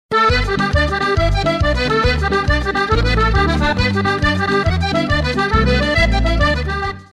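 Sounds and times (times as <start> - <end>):
jig music: 0.1 - 7.1.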